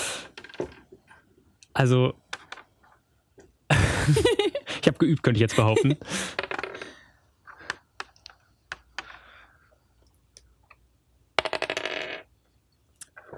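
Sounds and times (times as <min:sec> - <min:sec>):
speech: 0:01.8 - 0:02.2, 0:04.1 - 0:06.4
laughter: 0:03.7 - 0:06.3
dice rattling and clattering onto a hard surface: 0:11.4 - 0:12.3.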